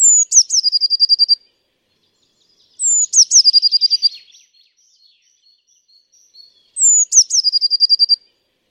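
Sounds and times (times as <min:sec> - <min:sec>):
Eurasian blue tit call, Cyanistes caeruleus: 0:00.0 - 0:01.4, 0:02.8 - 0:08.2.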